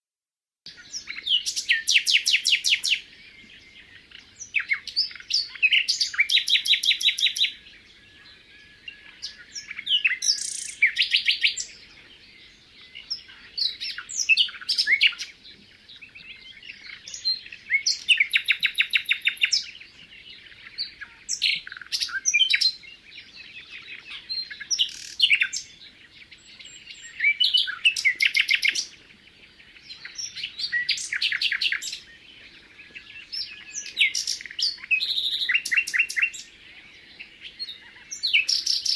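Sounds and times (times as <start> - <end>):
common nightingale singing: 0.7 - 38.9.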